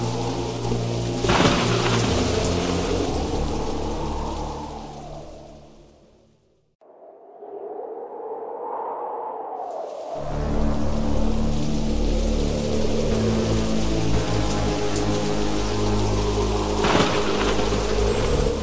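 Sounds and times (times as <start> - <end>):
deep rumbling thunder: 0.0 - 6.2, 7.6 - 18.6
heavy rain pouring: 0.0 - 6.2, 10.2 - 18.6.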